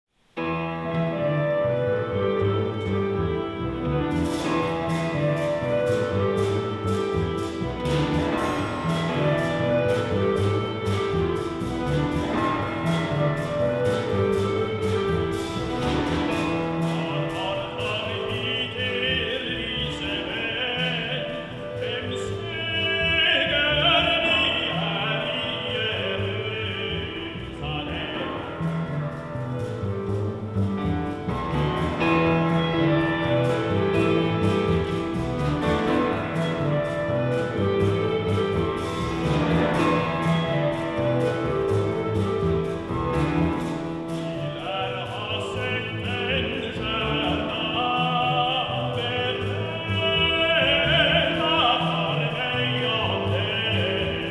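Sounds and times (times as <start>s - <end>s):
bass riff: 0.4s - 54.2s.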